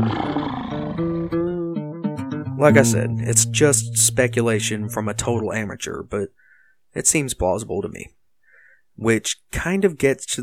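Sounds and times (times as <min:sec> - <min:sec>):
lion roaring: 0:00.0 - 0:01.2
speech: 0:02.6 - 0:08.2, 0:09.0 - 0:10.4.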